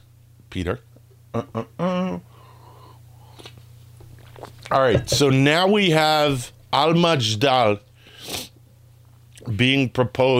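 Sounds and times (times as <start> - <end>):
steady low hum: 0.0 - 10.3
speech: 0.5 - 2.3, 4.7 - 7.9, 9.5 - 10.3
person sipping and slurping coffee: 4.2 - 4.7.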